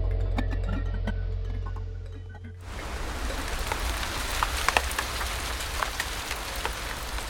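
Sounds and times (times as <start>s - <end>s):
low hum: 0.0s - 4.1s
heavy monsoon rain pouring outside: 2.6s - 7.2s.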